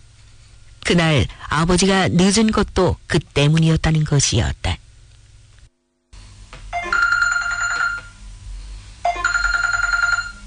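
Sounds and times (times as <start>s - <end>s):
low hum: 0.0s - 10.4s
speech: 0.9s - 4.8s
telephone ringing in bright trilling electronic bursts: 6.7s - 8.2s, 9.0s - 10.4s.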